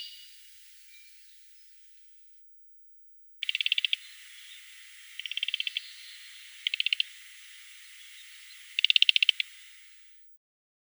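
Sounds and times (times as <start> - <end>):
taiga flycatcher: 3.4 - 10.1.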